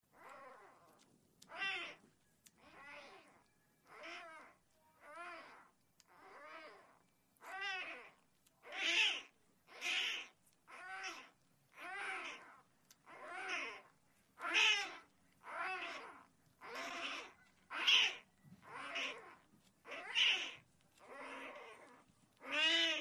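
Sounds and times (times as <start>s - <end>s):
cougar cubs nursing: 0.0s - 22.9s.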